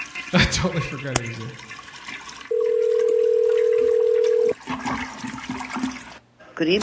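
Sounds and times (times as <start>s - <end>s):
speech: 0.3s - 1.7s, 6.6s - 6.8s
telephone dial tone while placing a call: 2.5s - 4.5s.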